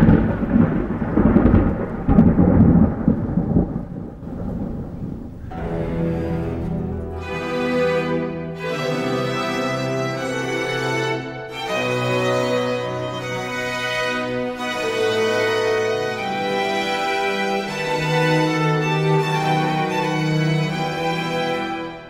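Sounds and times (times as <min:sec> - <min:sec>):
thunder rumbling in an English opera: 0:00.0 - 0:07.1
orchestral music with rich held chords in an English opera: 0:05.5 - 0:22.0.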